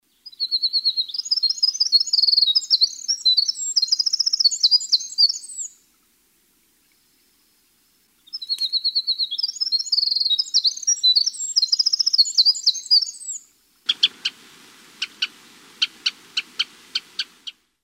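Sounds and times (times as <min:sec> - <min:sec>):
winter wren singing: 0:00.0 - 0:05.9, 0:08.2 - 0:14.4, 0:15.0 - 0:17.6.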